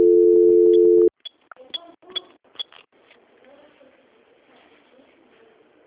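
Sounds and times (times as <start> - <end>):
steady telephone beep: 0.0 - 1.1.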